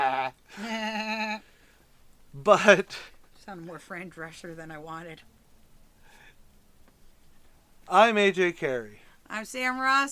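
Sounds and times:
human voice imitating a horse whinny: 0.0 - 1.4
speech: 2.4 - 5.4, 7.9 - 10.0.

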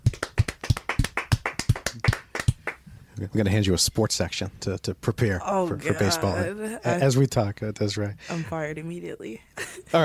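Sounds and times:
hand claps from one or two people welcoming a guest: 0.0 - 2.8
speech: 3.2 - 10.0.

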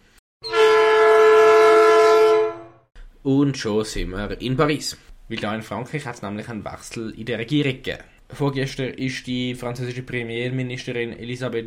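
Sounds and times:
train horn blaring as a transition sound effect: 0.4 - 2.9
speech: 3.2 - 11.6.

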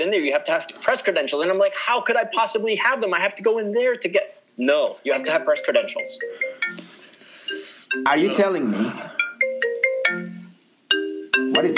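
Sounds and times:
speech: 0.0 - 6.8, 7.9 - 9.1
ringtone from an incoming call on a phone connected to a computer: 5.1 - 11.7.

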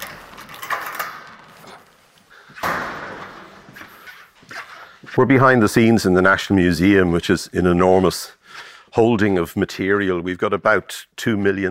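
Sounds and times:
heavy security doors banging and scraping open in a museum storage warehouse: 0.0 - 1.8, 2.6 - 3.8
loud thud: 2.6 - 3.6
speech: 5.2 - 8.4, 9.0 - 11.6.

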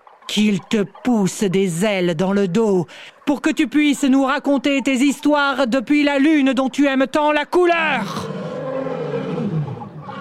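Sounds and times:
speech: 0.3 - 8.3
lion roaring: 7.9 - 10.1.

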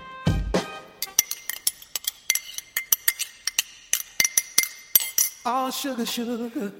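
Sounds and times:
teacups and spoons clinking: 1.0 - 5.8
speech: 5.4 - 6.7.

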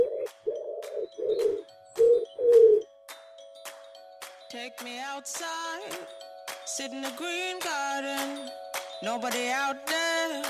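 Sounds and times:
pigeon cooing: 0.0 - 2.8
speech: 4.7 - 10.4.

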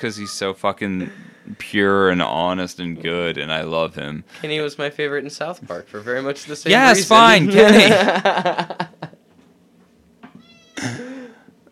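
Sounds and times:
cat meowing: 0.0 - 0.5, 10.4 - 10.8
speech: 0.0 - 8.9, 10.8 - 11.0
laughter: 6.7 - 9.2.

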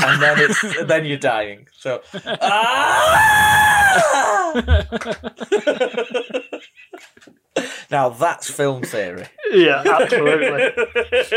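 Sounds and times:
laughter: 0.0 - 1.2, 2.1 - 2.9, 4.0 - 7.3, 9.4 - 11.3
speech: 0.1 - 6.7, 7.9 - 11.3
stock movie scream sound effect: 2.5 - 4.6.

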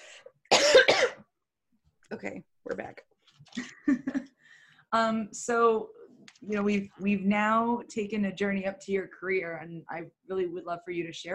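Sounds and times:
harsh coughs: 0.5 - 1.3
speech: 2.1 - 4.2, 4.9 - 11.3
faint breathy sound: 4.4 - 4.9.

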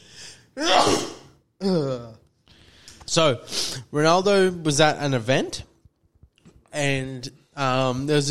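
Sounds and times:
person sneezing: 0.6 - 1.4
speech: 0.6 - 1.9, 3.1 - 5.7, 6.8 - 8.2.

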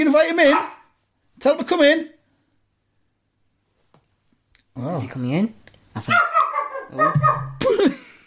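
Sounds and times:
speech: 0.0 - 0.8, 1.4 - 2.2, 4.8 - 8.0
dog giving a strained moaning whine and yelping bark: 6.1 - 7.6.

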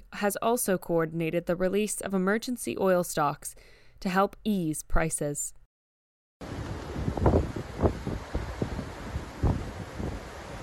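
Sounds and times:
speech: 0.2 - 5.6
wind-driven wildfire burning through dry grassland in Eastland, Texas: 6.4 - 10.6.

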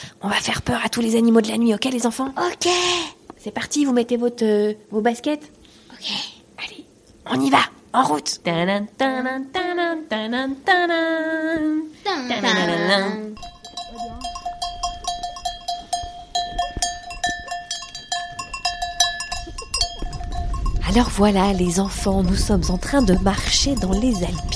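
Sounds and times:
speech: 0.0 - 6.7, 7.3 - 13.5, 21.0 - 24.5
bells of a flock of sheep brought home by shepherds in the Alpilles: 13.4 - 24.5.

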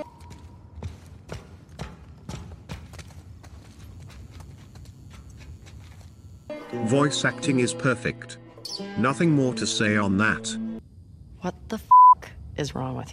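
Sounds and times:
hard echoing footsteps on a bare basement floor in a video game: 0.2 - 6.1
speech: 6.7 - 8.4, 9.0 - 10.6, 12.6 - 13.1.

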